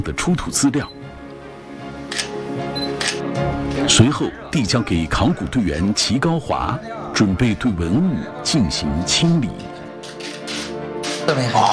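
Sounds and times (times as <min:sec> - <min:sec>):
speech: 0:00.0 - 0:01.0, 0:03.4 - 0:09.8, 0:11.3 - 0:11.7
camera shutter clicking while excavated relics are photographed: 0:02.1 - 0:02.4, 0:03.0 - 0:03.3, 0:10.0 - 0:11.2.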